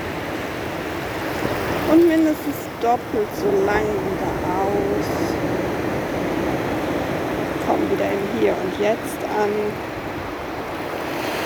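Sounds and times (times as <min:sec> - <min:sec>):
steady rush of ocean surf: 0:00.0 - 0:11.4
speech: 0:01.9 - 0:05.6, 0:07.7 - 0:09.9.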